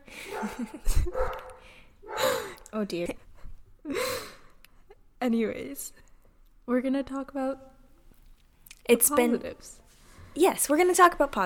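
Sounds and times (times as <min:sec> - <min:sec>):
dog barking: 0:00.3 - 0:02.4
speech: 0:00.4 - 0:01.4, 0:02.7 - 0:04.0, 0:05.2 - 0:06.0, 0:06.7 - 0:07.7, 0:08.9 - 0:09.8, 0:10.4 - 0:11.4.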